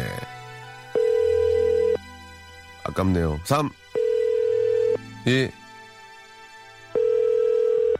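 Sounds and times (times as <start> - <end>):
telephone ringback tone from a call during a radio broadcast: 0.9 - 2.0, 4.0 - 5.0, 7.0 - 7.9
speech: 3.0 - 3.8, 5.2 - 5.6.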